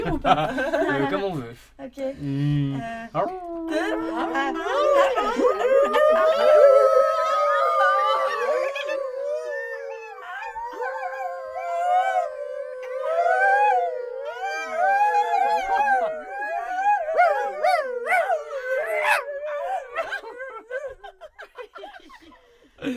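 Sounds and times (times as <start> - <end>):
laughter: 0.0 - 1.4, 3.2 - 22.9
speech: 0.0 - 6.9
human voices imitating a wolf's howl: 3.1 - 20.9.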